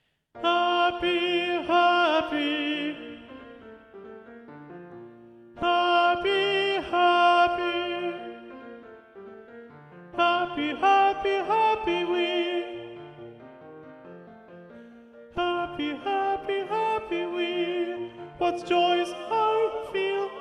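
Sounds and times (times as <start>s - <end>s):
alto voice singing: 0.4s - 4.1s, 5.4s - 9.0s, 10.1s - 13.5s, 15.3s - 20.3s.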